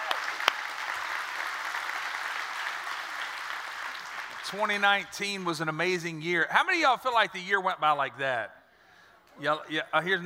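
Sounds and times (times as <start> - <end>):
audience applause: 0.0 - 4.6
speech: 4.5 - 8.6, 9.4 - 10.2.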